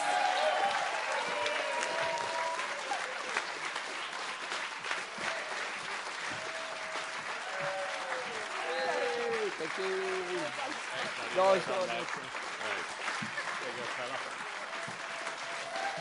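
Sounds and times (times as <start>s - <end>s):
faint cheers: 0.0s - 3.4s, 6.3s - 10.5s, 14.8s - 15.9s
audience applause: 0.0s - 15.9s
speech: 11.4s - 12.4s.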